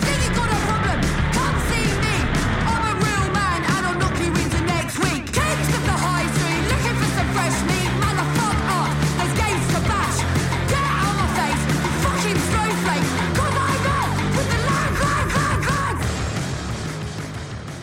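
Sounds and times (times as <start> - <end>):
punk rock song with distorted guitars, drums and shouted vocals: 0.0 - 17.8.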